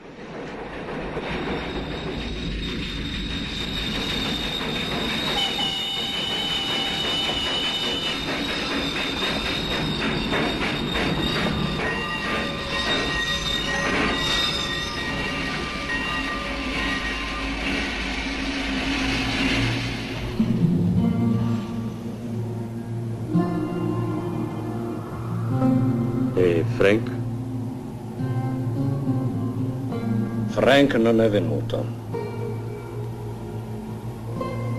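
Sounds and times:
arriving train rumbling: 0.0s - 34.7s
high metallic train wheel squeals and screeches: 1.1s - 20.3s
speech: 30.8s - 32.0s.

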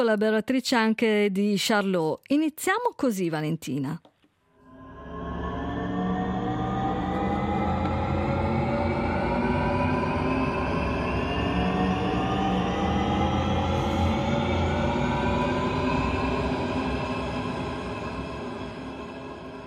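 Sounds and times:
speech: 0.0s - 4.1s
loud airplane engine roar with whining tones: 4.8s - 19.6s.

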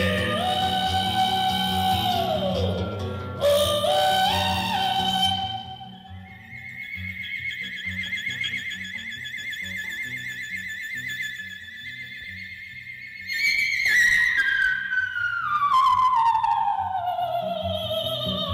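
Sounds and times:
extremely high pharyngeal whistle-like vocal note: 0.1s - 18.4s.

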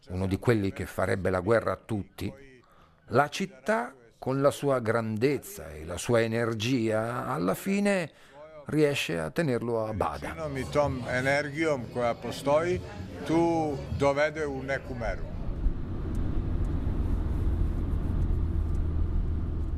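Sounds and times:
speech: 0.0s - 2.5s, 3.1s - 15.3s
low car engine rumble: 10.0s - 19.7s
broadband road noise from a car in motion through city streets: 12.8s - 19.7s.

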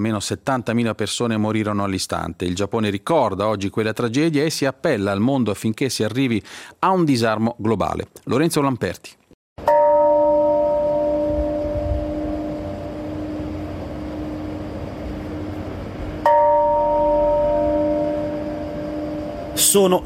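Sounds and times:
speech: 0.0s - 9.2s, 19.7s - 20.0s
peace bell tolling at the Hiroshima memorial park in Japan: 9.6s - 20.0s.

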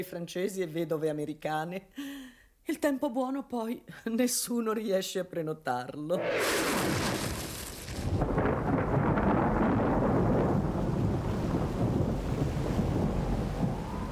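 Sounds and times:
speech: 0.0s - 7.2s
deep rolling thunder of a tropical thunderstorm on an island: 6.2s - 14.1s
heavy tropical rain battering a glass-and-concrete hotel on an island: 6.3s - 14.1s.

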